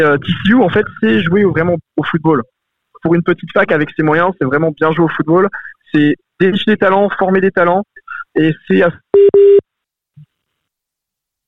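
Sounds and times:
speech: 0:00.0 - 0:09.7
busy tone after a dropped phone call: 0:09.2 - 0:09.6.

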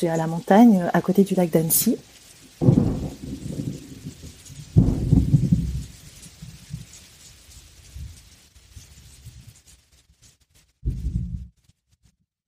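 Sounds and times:
speech: 0:00.0 - 0:03.0
steady rain: 0:00.0 - 0:11.7
deep booming rumbles: 0:02.6 - 0:06.0.

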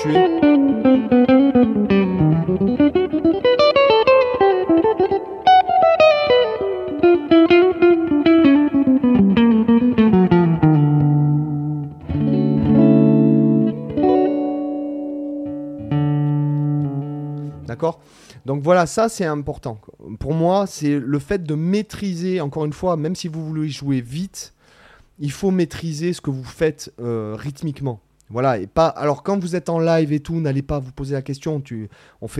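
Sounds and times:
speech: 0:00.0 - 0:00.4, 0:18.6 - 0:24.6, 0:25.2 - 0:32.3
distorted electric guitar legato run: 0:00.0 - 0:17.7.

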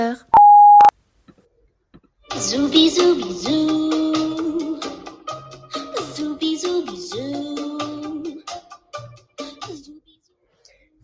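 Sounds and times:
speech: 0:00.0 - 0:00.3, 0:02.4 - 0:04.0
loud steady electronic answering machine beep: 0:00.4 - 0:00.9.

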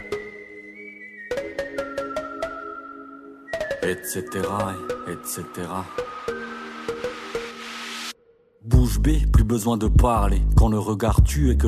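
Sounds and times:
sustained whistle-like melodic line: 0:00.0 - 0:08.1
speech: 0:03.8 - 0:06.4, 0:08.9 - 0:11.6
steady pulse of sharp punchy beats: 0:08.7 - 0:11.4.

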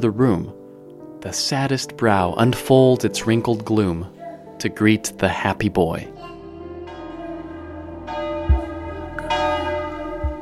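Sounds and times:
speech: 0:00.0 - 0:00.6, 0:01.2 - 0:06.2
church bells ringing in overlapping peals: 0:02.7 - 0:10.3.

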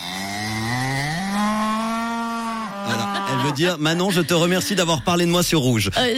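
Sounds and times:
cow mooing: 0:00.0 - 0:03.6
laughter: 0:02.7 - 0:06.1
speech: 0:02.9 - 0:06.1.

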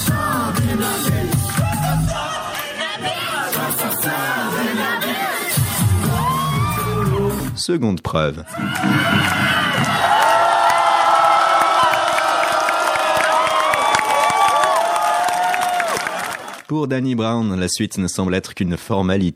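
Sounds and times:
large concert crowd cheering: 0:00.1 - 0:07.5, 0:08.5 - 0:16.7
shouts and whoops: 0:06.0 - 0:07.4, 0:08.5 - 0:16.6
speech: 0:07.7 - 0:09.5, 0:16.7 - 0:19.3
clapping: 0:10.1 - 0:16.7.

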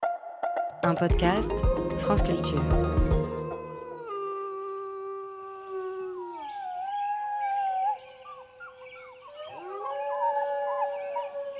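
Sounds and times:
speech: 0:00.8 - 0:03.2
several wolves howling in chorus: 0:02.9 - 0:11.5.

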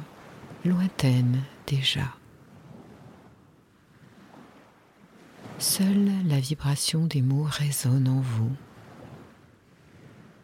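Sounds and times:
sea waves washing onto a shore: 0:00.0 - 0:06.1, 0:08.2 - 0:10.4
speech: 0:00.6 - 0:02.2, 0:05.8 - 0:08.7
wind buffeting: 0:02.2 - 0:05.7, 0:08.6 - 0:10.4.

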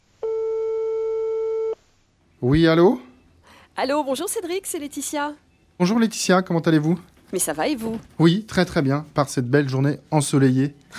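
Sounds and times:
faint hum: 0:00.0 - 0:10.9
telephone ringback tone: 0:00.2 - 0:01.8
speech: 0:02.4 - 0:03.0, 0:03.8 - 0:10.9.

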